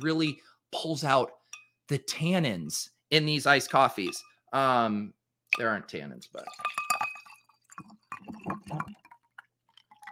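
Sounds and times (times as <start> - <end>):
speech: 0.0 - 6.8
glass mug clinking: 4.0 - 4.4, 6.4 - 10.1.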